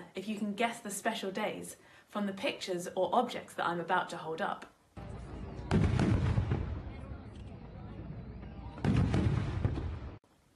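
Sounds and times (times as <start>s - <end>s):
speech: 0.2s - 4.7s
fireworks exploding: 5.0s - 10.2s.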